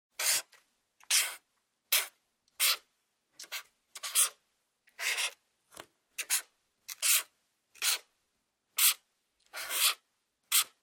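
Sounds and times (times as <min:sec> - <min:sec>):
felt tip pen writing: 0:00.2 - 0:02.8, 0:03.4 - 0:05.4, 0:06.2 - 0:08.1, 0:08.8 - 0:10.8.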